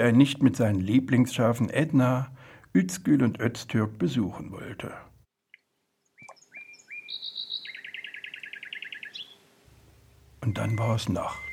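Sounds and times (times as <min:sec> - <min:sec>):
speech: 0:00.0 - 0:05.1, 0:10.4 - 0:11.5
soft hiss: 0:00.0 - 0:11.5
nightingale singing: 0:06.0 - 0:09.4, 0:10.4 - 0:11.5.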